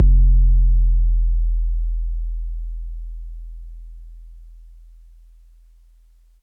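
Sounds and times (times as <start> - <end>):
808 bass drum from MPC60: 0.0 - 5.0.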